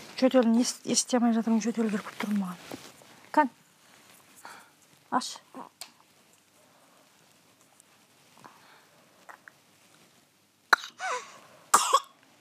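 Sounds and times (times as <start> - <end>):
speech: 0.2 - 3.6, 5.1 - 5.7
faint rustles: 1.4 - 10.3
dry coughing: 10.8 - 12.1.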